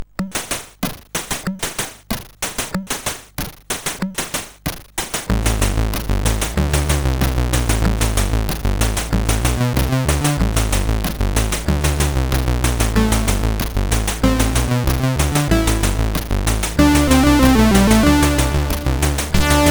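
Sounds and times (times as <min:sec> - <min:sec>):
drums: 0:00.0 - 0:19.6.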